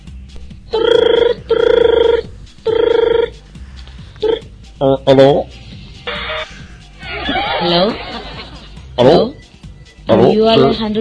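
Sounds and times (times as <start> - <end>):
telephone ringing: 1.0 - 3.3
speech: 4.8 - 5.6, 7.7 - 8.1, 10.4 - 10.9
laughter: 7.0 - 8.8.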